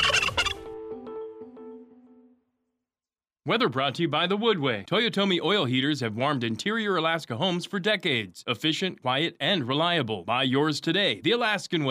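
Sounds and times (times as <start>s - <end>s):
turkey gobbling: 0.0s - 0.7s
speech: 3.4s - 11.8s.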